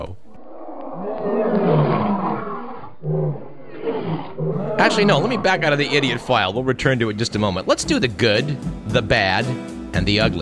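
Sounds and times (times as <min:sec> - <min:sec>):
speech: 0:00.0 - 0:00.2, 0:04.9 - 0:10.4
lion roar: 0:00.3 - 0:06.6.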